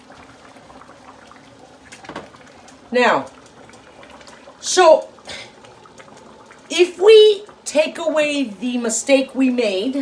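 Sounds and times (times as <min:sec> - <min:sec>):
stirring orzo pasta in a pot: 0:00.0 - 0:09.8
orzo pasta boiling in a pot: 0:00.0 - 0:09.9
speech: 0:02.9 - 0:03.4, 0:04.7 - 0:05.1, 0:06.8 - 0:09.9.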